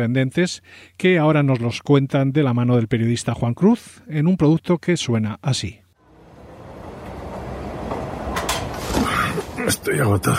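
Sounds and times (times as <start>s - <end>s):
speech: 0.0s - 5.8s, 9.6s - 10.3s
Madrid metro train running: 6.0s - 10.3s.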